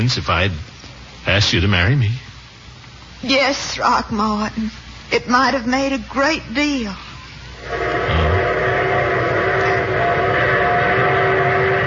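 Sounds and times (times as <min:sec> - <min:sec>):
speech: 0:00.0 - 0:02.3, 0:03.2 - 0:07.8
train rumbling with a sustained tonal hum: 0:07.6 - 0:11.8.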